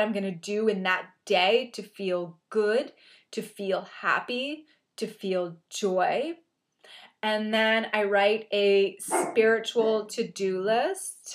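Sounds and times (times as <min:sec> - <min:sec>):
speech: 0:00.0 - 0:11.3
dog barking: 0:09.1 - 0:09.4.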